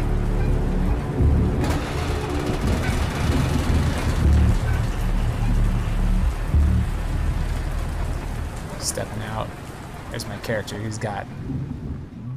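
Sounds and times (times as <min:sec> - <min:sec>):
deep rumbling drone: 0:00.0 - 0:09.8, 0:10.9 - 0:12.3
low thumps: 0:00.0 - 0:09.8
heavy rain in a video game storm at night: 0:00.0 - 0:12.0
speech: 0:10.5 - 0:11.8.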